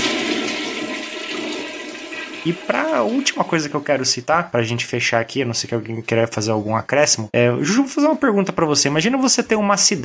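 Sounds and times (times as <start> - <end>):
water rushing in a hydromassage bath: 0.0 - 4.2
speech: 2.4 - 10.0.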